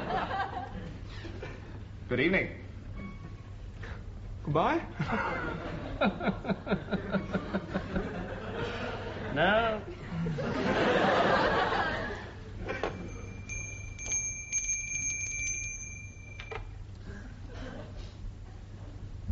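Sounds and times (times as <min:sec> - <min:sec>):
laughter: 0:00.0 - 0:01.8, 0:05.0 - 0:13.3
speech: 0:02.1 - 0:02.6, 0:04.4 - 0:07.9, 0:09.4 - 0:11.2
electric bell ringing with a bright buzzing metallic tone: 0:12.7 - 0:16.9.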